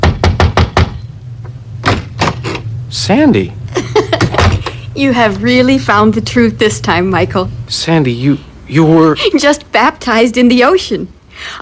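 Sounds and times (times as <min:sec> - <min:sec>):
knocking on a door at night: 0:00.0 - 0:01.0, 0:04.2 - 0:04.7
speech: 0:02.9 - 0:03.6, 0:05.0 - 0:11.5.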